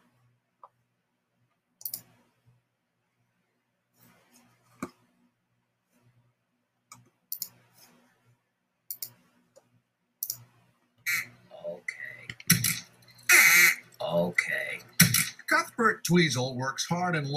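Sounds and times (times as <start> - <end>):
sharp clicks and ticks: 1.8 - 2.2, 6.9 - 7.6, 8.9 - 11.2, 12.2 - 15.5
duck call blown by a duck call tester: 11.1 - 11.4, 13.3 - 13.8
speech: 15.6 - 17.3.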